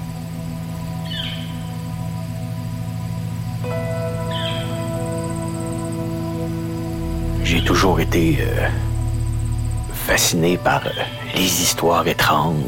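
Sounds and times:
steady low droning hum: 0.0s - 12.6s
bird chirps in a field: 0.9s - 1.9s, 3.6s - 12.1s
speech: 7.6s - 8.9s, 10.1s - 12.6s.

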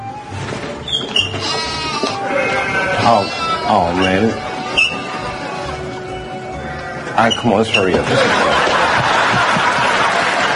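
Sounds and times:
goat bleating: 1.2s - 7.3s
laughter: 2.7s - 6.3s, 7.1s - 10.5s
speech: 3.1s - 4.5s, 7.2s - 8.5s.

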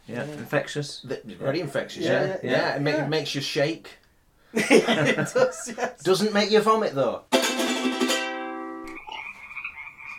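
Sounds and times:
speech: 0.1s - 8.0s
laughter: 4.6s - 6.0s, 9.0s - 10.1s
chorus of frogs croaking in ditches: 8.9s - 10.1s.

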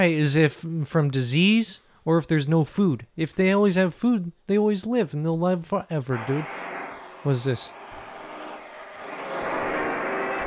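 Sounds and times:
speech: 0.0s - 7.8s
airplane engine drone on board an airplane: 6.1s - 10.4s.

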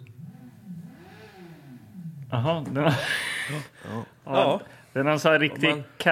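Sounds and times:
car engine revving outside: 0.0s - 3.1s
speech: 2.3s - 6.0s.

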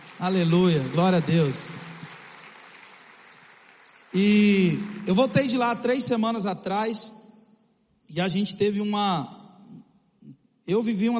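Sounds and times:
crowd applauding: 0.0s - 6.1s
speech: 0.2s - 1.9s, 4.2s - 7.2s, 8.1s - 9.4s, 10.7s - 11.1s.

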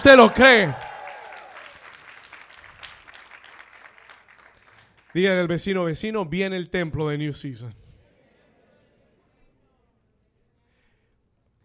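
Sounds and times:
speech: 0.0s - 0.8s, 5.2s - 7.8s
audience applauding: 0.0s - 5.5s.

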